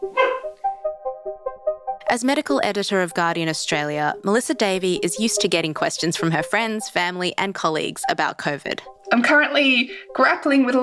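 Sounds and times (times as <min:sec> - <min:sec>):
female dog letting out short high whining yips: 0:00.0 - 0:00.6
speech: 0:02.1 - 0:10.8.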